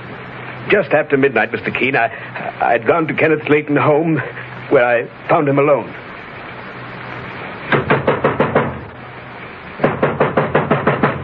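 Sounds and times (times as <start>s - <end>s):
speech: 0.7s - 6.0s
firm knocking on a wooden door: 7.7s - 8.8s, 9.8s - 11.2s.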